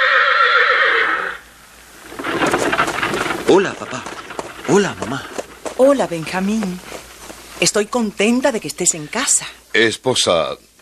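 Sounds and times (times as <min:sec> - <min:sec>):
horse neighing: 0:00.0 - 0:01.5
rough rustling clatter possibly of hooves: 0:01.9 - 0:08.0
speech: 0:03.5 - 0:04.1, 0:04.7 - 0:06.9, 0:07.6 - 0:10.7.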